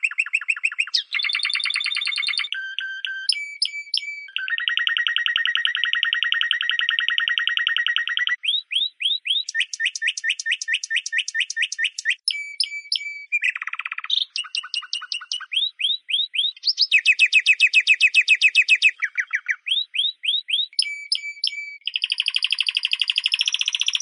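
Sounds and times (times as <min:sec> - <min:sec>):
Spanish Timbrado canary singing with metallic trills: 0:00.0 - 0:24.0.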